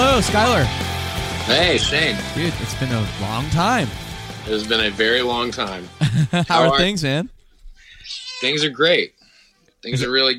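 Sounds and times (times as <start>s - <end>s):
speech: 0.2s - 0.9s, 1.5s - 7.4s, 8.1s - 9.2s, 9.8s - 10.3s
laughter: 6.0s - 7.2s
kitten meowing: 8.0s - 8.6s.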